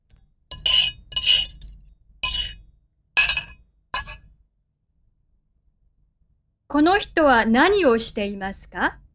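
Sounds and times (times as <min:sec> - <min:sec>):
tableware clinking and scraping as a person eats: 0:00.5 - 0:02.6, 0:03.2 - 0:04.2
speech: 0:06.7 - 0:09.0.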